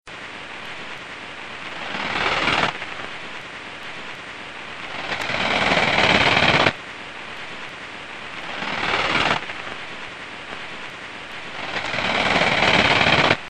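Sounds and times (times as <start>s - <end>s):
Chorthippus biguttulus grasshopper chirping: 1.7s - 10.2s, 11.1s - 13.4s.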